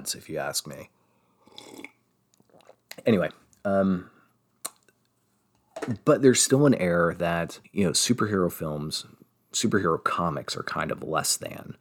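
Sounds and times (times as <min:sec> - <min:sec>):
speech: 0:00.0 - 0:01.0, 0:03.0 - 0:04.2, 0:05.8 - 0:11.7
slurping sip of hot green tea: 0:01.4 - 0:03.1
faint mouth and cup sounds: 0:01.5 - 0:03.6.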